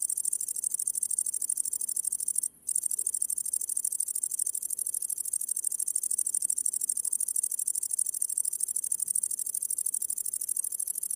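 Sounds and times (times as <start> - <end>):
great green bush-cricket song: 0.0 - 11.1.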